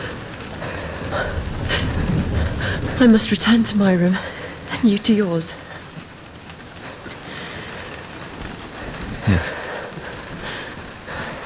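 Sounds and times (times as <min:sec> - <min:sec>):
heavy rain from a storm pouring down: 0:00.0 - 0:11.4
low rumbling thump: 0:01.2 - 0:03.8
speech: 0:03.0 - 0:05.6.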